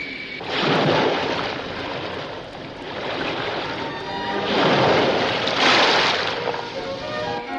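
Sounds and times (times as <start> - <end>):
roar of rough churning sea during a shipwreck: 0.0 - 7.4
heavy ocean waves crashing during a shipwreck: 0.0 - 7.5.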